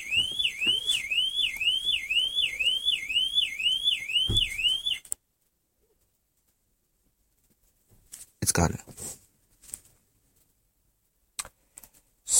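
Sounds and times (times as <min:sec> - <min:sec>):
car alarm siren wailing: 0:00.0 - 0:05.1
speech: 0:08.6 - 0:09.0.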